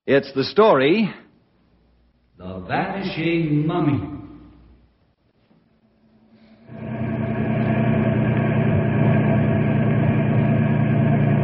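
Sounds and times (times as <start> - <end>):
speech: 0.1 - 1.2, 2.4 - 4.2
car engine idling as vehicle drives up: 6.6 - 11.4.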